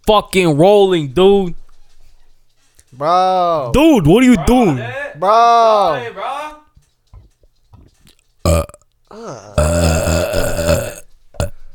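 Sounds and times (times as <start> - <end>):
speech: 0.1 - 1.6, 2.9 - 6.5, 8.5 - 10.9
brief vocal blurt: 8.5 - 11.5
short belch: 8.5 - 11.5
loud deep gurgling burp from the stomach: 8.5 - 11.6.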